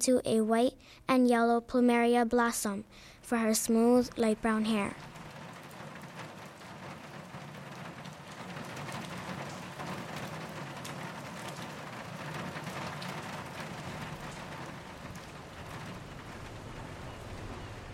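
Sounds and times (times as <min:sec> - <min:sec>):
speech: 0:00.0 - 0:05.1
soft rain falling: 0:02.8 - 0:17.9
low rumble: 0:15.3 - 0:17.9.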